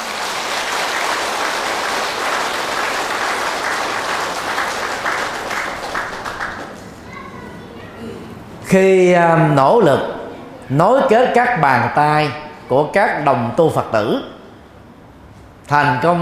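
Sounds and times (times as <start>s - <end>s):
large audience applause: 0.0s - 7.0s
speech: 8.7s - 14.3s, 15.7s - 16.2s.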